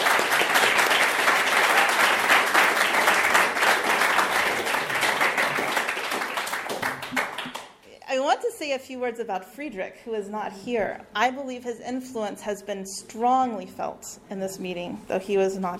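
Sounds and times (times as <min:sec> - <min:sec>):
audience applause: 0:00.0 - 0:07.7
speech: 0:08.6 - 0:15.7.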